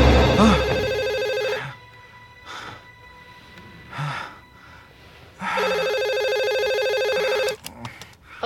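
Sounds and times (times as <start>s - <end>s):
telephone ringing with a loud bright electronic trill: 0.1s - 1.8s, 5.6s - 7.6s
breaths: 2.5s - 5.7s, 7.6s - 8.4s.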